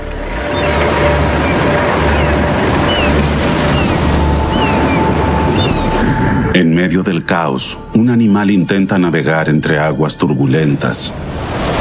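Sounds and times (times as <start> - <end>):
heavy storm surf crashing against the shore: 0.0 - 8.0, 10.8 - 11.7
faint high whistling chirps: 0.5 - 6.2
speech: 6.9 - 11.6.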